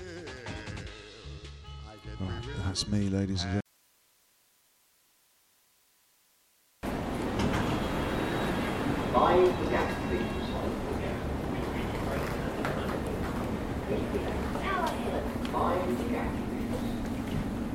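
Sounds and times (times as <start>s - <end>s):
speech: 2.5s - 3.6s
London Underground Circle Line train rumble and rattle inside moving train: 6.9s - 17.7s.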